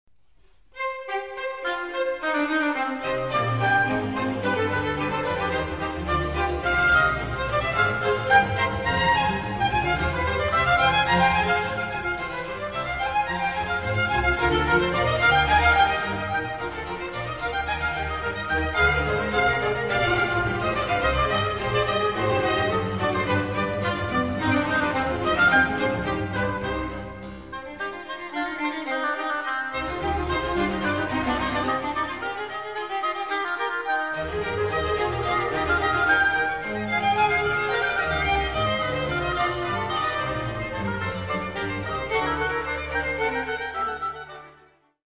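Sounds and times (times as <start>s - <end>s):
two harpsichords and strings playing a concerto in C minor: 0.8s - 44.9s.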